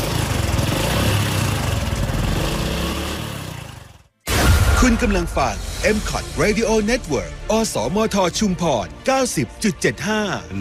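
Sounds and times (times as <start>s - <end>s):
motorcycle engine idling: 0.0s - 2.5s
speech: 4.8s - 10.5s.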